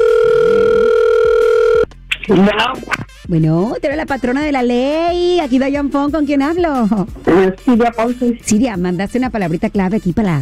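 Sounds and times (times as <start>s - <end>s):
electronic ringback tone of a call placed to a cellphone: 0.0s - 1.9s
speech: 2.3s - 10.4s.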